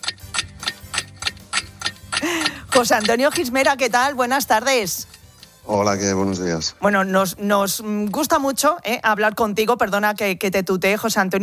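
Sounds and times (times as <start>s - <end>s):
wind-up clocks ticking in a royal palace: 0.0s - 5.6s, 7.8s - 8.6s
speech: 2.8s - 5.1s, 5.7s - 11.4s.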